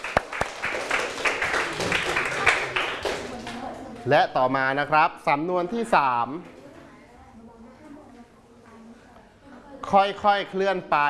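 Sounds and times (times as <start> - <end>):
audience clapping for themselves: 0.0 - 3.7
speech: 4.0 - 6.5, 9.9 - 11.0.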